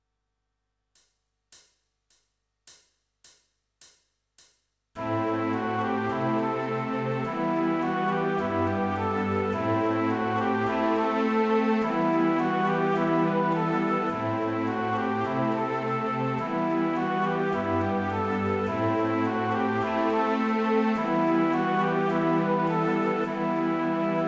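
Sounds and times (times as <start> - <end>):
orchestral woodwind melody riff in E minor: 5.0 - 24.2.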